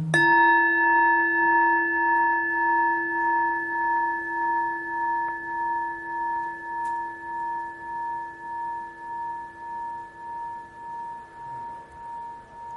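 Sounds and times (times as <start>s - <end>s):
Buddhist temple bell ringing: 0.2s - 12.7s.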